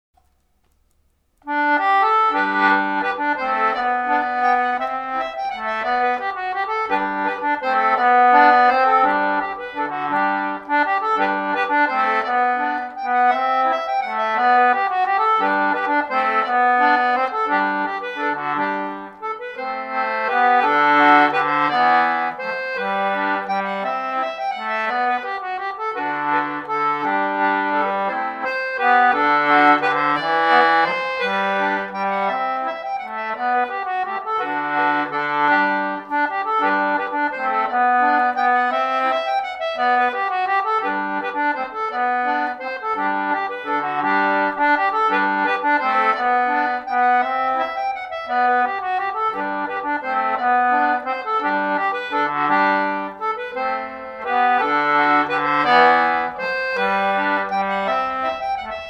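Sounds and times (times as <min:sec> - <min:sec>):
concertina playing a waltz: 0:01.4 - 0:58.8.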